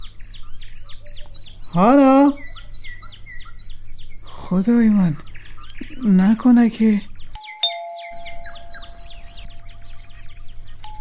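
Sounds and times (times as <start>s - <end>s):
speech: 1.7s - 2.4s, 4.5s - 5.3s, 6.0s - 7.1s
doorbell chime with bird-like notes ringing indoors: 7.4s - 10.0s.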